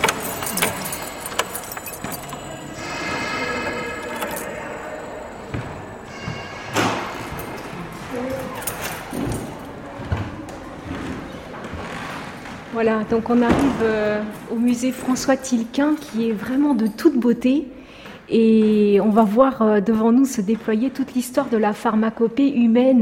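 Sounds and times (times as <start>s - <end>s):
bunch of keys jangling and clinking: 0.0s - 5.2s, 6.9s - 9.8s
speech: 12.8s - 22.9s.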